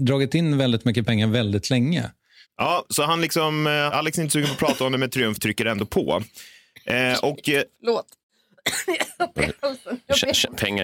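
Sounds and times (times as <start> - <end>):
speech: 0.0 - 10.8
throat clearing: 4.4 - 4.9
person coughing: 4.4 - 5.0, 8.6 - 9.6.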